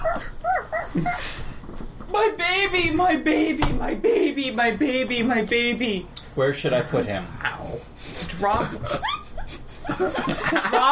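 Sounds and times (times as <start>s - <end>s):
dogs barking and whining: 0.0s - 1.2s
speech: 0.9s - 1.4s, 2.2s - 9.1s, 9.9s - 10.9s
laughter: 8.4s - 10.9s.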